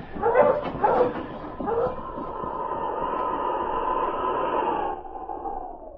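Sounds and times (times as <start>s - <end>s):
sled dogs barking in overlapping yelps: 0.0s - 2.9s
sled dog howling: 0.0s - 5.9s.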